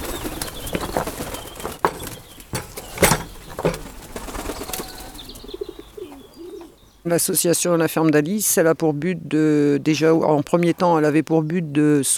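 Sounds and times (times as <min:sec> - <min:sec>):
pigeons flapping wings flying in to be fed: 0:00.0 - 0:06.0
faint pigeon cooing: 0:00.0 - 0:07.4
speech: 0:07.1 - 0:12.1.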